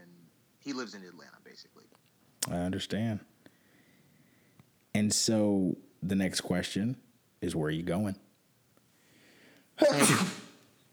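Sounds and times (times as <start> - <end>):
speech: 0.6 - 3.3, 5.0 - 8.2, 9.8 - 10.4
loud sharp sneeze: 9.8 - 10.7.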